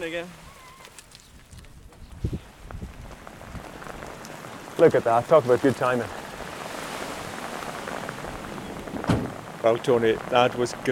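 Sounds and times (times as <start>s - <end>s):
speech: 0.0s - 0.5s, 4.8s - 6.2s, 9.6s - 10.8s
rain falling: 0.0s - 10.8s.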